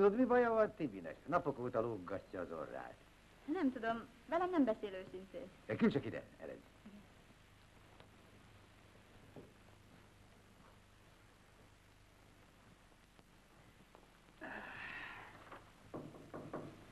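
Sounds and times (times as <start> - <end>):
speech: 0.0 - 7.0
faint hum: 0.0 - 16.9
brief rustling noise: 7.2 - 14.4
quick knocks on a door: 15.9 - 16.9.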